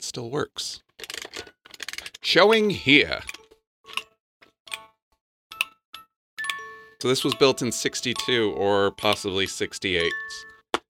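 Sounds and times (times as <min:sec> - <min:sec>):
speech: 0:00.1 - 0:00.9, 0:02.2 - 0:03.4, 0:07.0 - 0:10.5
wind-up wooden toy clock ticking: 0:01.8 - 0:04.1, 0:04.7 - 0:05.8, 0:06.4 - 0:10.8.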